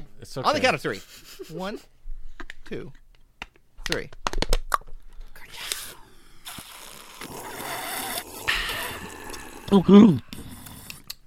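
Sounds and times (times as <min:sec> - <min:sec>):
speech: 0:00.2 - 0:01.9, 0:02.7 - 0:03.0, 0:03.9 - 0:04.2, 0:09.7 - 0:10.5
people slurping and gulping soda: 0:05.2 - 0:11.2
voiced exhale or murmur: 0:05.4 - 0:11.2.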